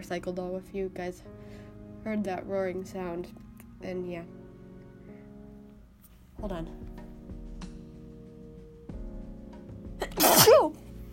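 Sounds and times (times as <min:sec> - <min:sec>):
speech: 0:00.0 - 0:04.4, 0:06.4 - 0:07.0
faint noise: 0:00.0 - 0:11.1
sick person sneezing: 0:10.0 - 0:10.8.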